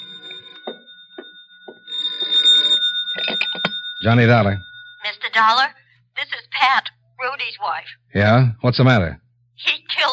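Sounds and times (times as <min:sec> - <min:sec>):
old-fashioned telephone bell ringing: 0:00.0 - 0:05.7
speech: 0:04.0 - 0:04.7, 0:05.4 - 0:09.8.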